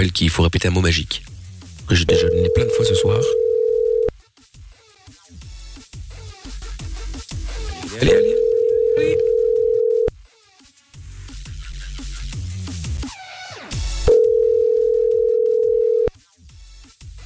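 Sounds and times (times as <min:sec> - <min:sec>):
speech: 0:00.0 - 0:01.3, 0:01.9 - 0:03.4, 0:08.0 - 0:08.4
telephone ringback tone with no answer: 0:02.0 - 0:04.1, 0:08.0 - 0:10.1, 0:14.1 - 0:16.1.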